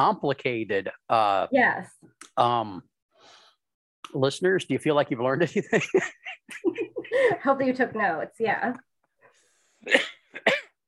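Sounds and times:
speech: 0.0 - 2.9, 4.1 - 8.9, 9.8 - 10.6
person coughing: 9.8 - 10.8.

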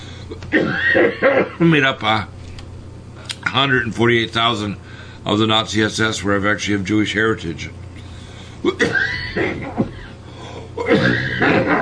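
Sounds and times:
speech: 0.3 - 2.4, 3.4 - 7.8, 8.6 - 9.9, 10.8 - 11.8
person clearing throat: 0.4 - 1.7, 8.6 - 11.8
person coughing: 0.4 - 1.7, 8.6 - 11.8.

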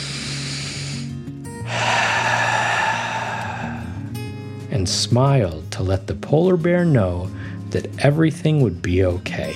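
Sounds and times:
slow deep breath in and out: 0.0 - 4.6
speech: 4.8 - 9.5.

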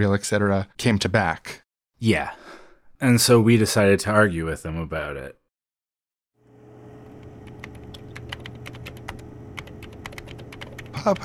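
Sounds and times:
speech: 0.0 - 2.4, 3.0 - 5.4, 11.0 - 11.2
steady low hum: 6.4 - 11.0
typing on a computer keyboard: 7.4 - 11.2.

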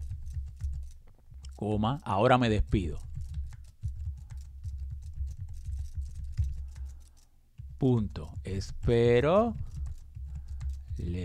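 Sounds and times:
typing on a computer keyboard: 0.0 - 11.2
speech: 1.6 - 3.1, 7.8 - 9.7, 11.0 - 11.2.

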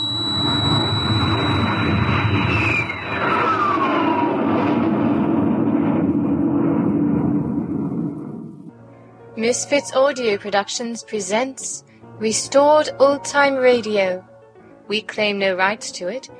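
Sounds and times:
descending whistling tone: 0.0 - 8.7
rocket blasting off at launch: 0.0 - 8.8
speech: 9.4 - 14.3, 14.9 - 16.3.

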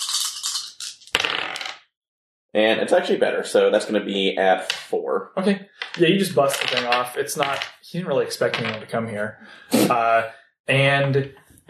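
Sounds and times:
dice being shaken during a tabletop game: 0.0 - 1.8, 5.8 - 7.8, 8.5 - 8.9
speech: 2.5 - 11.6.

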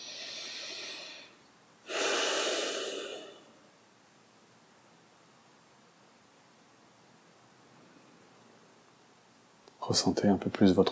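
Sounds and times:
slow deep breaths in and out: 0.0 - 3.6
speech: 9.9 - 10.9.

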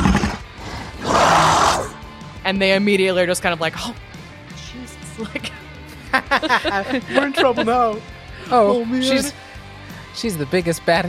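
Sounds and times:
loud rough creature roar sound effect: 0.0 - 2.0
speech: 2.5 - 4.1, 4.7 - 9.4, 10.2 - 11.0
laughter: 5.2 - 9.4.

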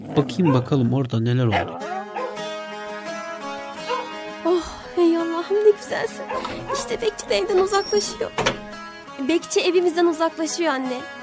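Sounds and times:
dogs whining: 0.0 - 0.7, 1.5 - 2.6, 3.8 - 4.2, 6.1 - 8.8
dogs barking in a chorus: 0.0 - 2.7, 3.7 - 4.3, 6.0 - 8.7
speech: 0.1 - 2.1, 5.5 - 8.6, 9.2 - 11.2
dog yelps: 0.4 - 0.7, 1.5 - 2.5, 3.8 - 4.2, 6.2 - 8.3.

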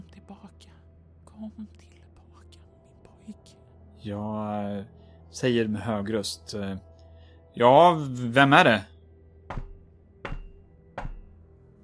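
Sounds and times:
speech: 1.4 - 2.0, 4.0 - 6.9, 7.6 - 8.9
knocking on a door: 9.5 - 11.4.

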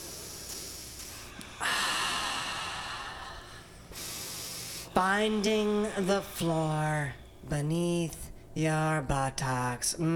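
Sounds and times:
breathing through the nose: 0.0 - 5.0
speech: 5.0 - 10.1.

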